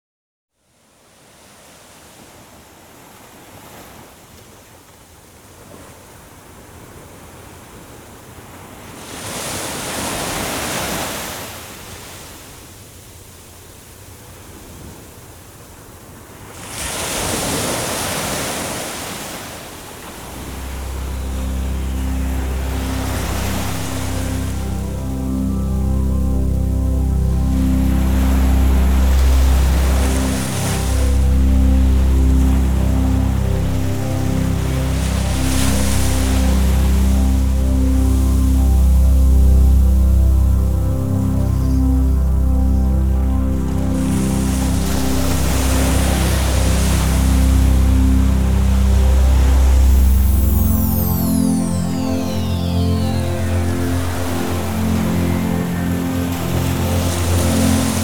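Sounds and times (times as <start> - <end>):
ocean: 0.6 - 58.0
relaxing music: 20.0 - 58.0.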